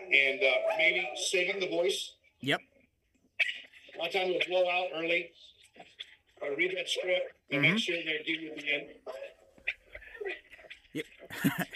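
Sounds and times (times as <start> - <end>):
speech: 0.1 - 2.7, 3.4 - 9.3, 10.2 - 11.7
dogs barking: 0.5 - 1.2
laughter: 11.3 - 11.7.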